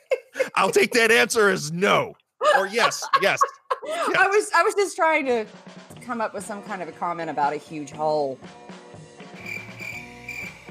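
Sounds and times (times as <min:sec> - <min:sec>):
laughter: 0:00.0 - 0:04.6
speech: 0:00.6 - 0:08.8
cricket chirping: 0:09.4 - 0:10.7.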